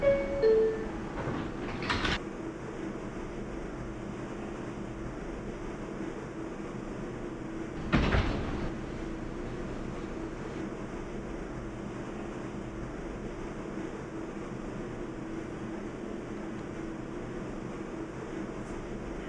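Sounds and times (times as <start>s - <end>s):
sliding door opening with a whooshing clatter: 0.0s - 2.2s, 7.8s - 10.6s
low mechanical hum: 0.0s - 19.2s.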